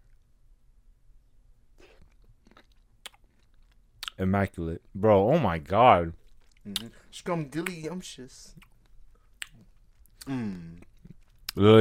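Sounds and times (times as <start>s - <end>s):
chewing cherries: 1.8s - 4.2s, 6.1s - 7.9s, 8.5s - 11.6s
speech: 4.2s - 8.7s, 10.3s - 10.9s, 11.6s - 11.8s.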